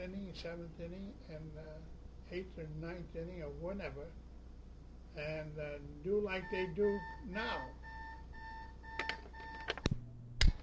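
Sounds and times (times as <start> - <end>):
speech: 0.1 - 4.2, 5.2 - 7.8
high-pitched electronic alarm beeping: 6.2 - 9.8.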